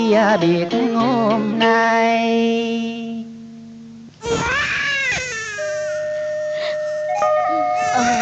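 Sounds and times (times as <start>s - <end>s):
speech: 0.1s - 3.2s
newborn baby crying in wavering wails: 4.2s - 8.2s.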